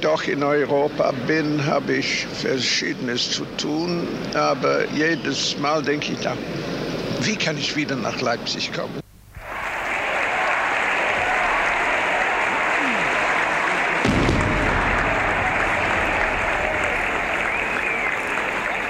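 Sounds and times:
speech: 0:00.0 - 0:09.0
large crowd applause welcoming a Soviet cosmonaut in Leipzig: 0:09.4 - 0:18.8.

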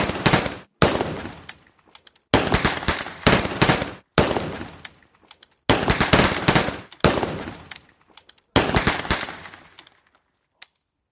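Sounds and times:
gunfire from a firing squad: 0:00.0 - 0:01.5, 0:02.3 - 0:04.9, 0:05.7 - 0:07.8, 0:08.6 - 0:09.8.

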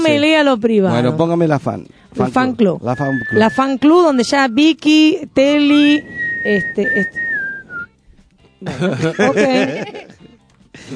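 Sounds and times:
speech: 0:00.0 - 0:07.2, 0:08.6 - 0:10.1
person whistling a short high tune: 0:02.9 - 0:04.7, 0:05.7 - 0:07.9
people chuckling: 0:08.6 - 0:10.3.

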